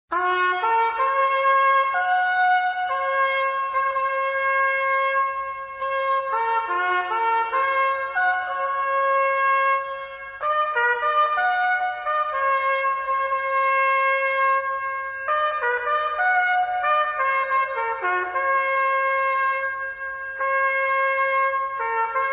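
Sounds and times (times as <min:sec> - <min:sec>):
trumpet call: 0:00.1 - 0:22.3.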